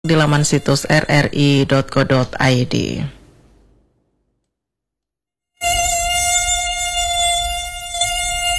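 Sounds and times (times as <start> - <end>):
speech: 0.0 - 3.2
mosquito buzzing near the ear: 5.6 - 8.5.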